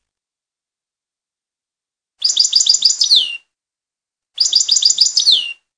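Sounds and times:
goldfinch: 0:02.2 - 0:03.3, 0:04.4 - 0:05.5.

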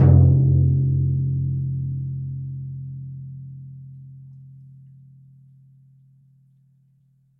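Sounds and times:
large timpani: 0:00.0 - 0:03.6.

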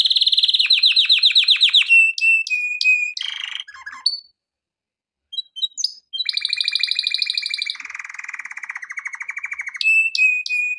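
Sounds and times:
canary song: 0:00.0 - 0:04.4, 0:05.3 - 0:10.7.

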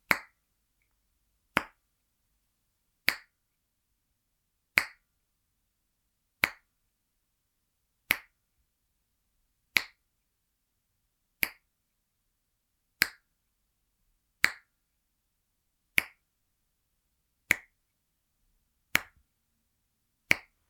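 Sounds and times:
finger clicks: 0:01.6 - 0:01.8, 0:03.0 - 0:03.3, 0:04.8 - 0:05.0, 0:06.4 - 0:06.7, 0:08.1 - 0:08.3, 0:09.8 - 0:10.0, 0:11.4 - 0:11.7, 0:13.0 - 0:13.3, 0:14.4 - 0:14.7, 0:16.0 - 0:16.2, 0:17.5 - 0:17.8, 0:18.9 - 0:19.2, 0:20.3 - 0:20.6.

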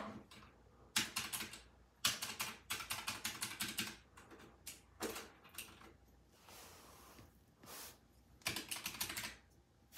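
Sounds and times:
calculator: 0:00.2 - 0:06.0, 0:08.4 - 0:09.5.

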